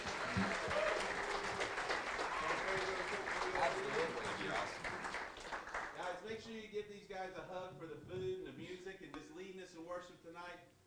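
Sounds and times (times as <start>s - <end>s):
people whooping: 0.0s - 4.7s
audience applause at an evening church worship service: 0.0s - 6.1s
speech: 6.5s - 10.8s.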